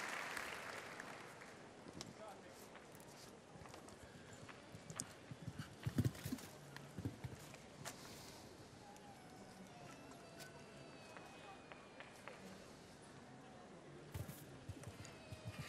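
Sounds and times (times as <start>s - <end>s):
broad crowd noise: 0.0s - 15.6s
competition horse hooves clip-clopping in a jumping event: 4.4s - 7.6s.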